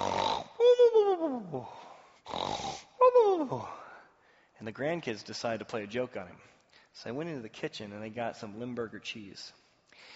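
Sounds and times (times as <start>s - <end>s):
person imitating a grandfather snoring in a recliner: 0.0s - 0.8s, 2.2s - 3.4s
speech: 1.4s - 1.9s, 3.4s - 3.8s, 4.6s - 10.1s.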